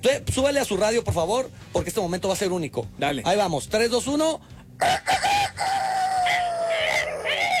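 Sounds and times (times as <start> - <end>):
speech: 0.2 - 5.3
person imitating a rooster crowing as a wake-up call: 4.8 - 7.5.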